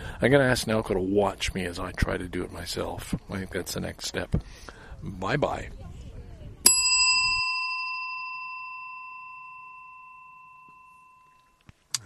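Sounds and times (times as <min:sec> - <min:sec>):
speech: 0:00.2 - 0:05.9
single bright bell chime: 0:06.7 - 0:11.6.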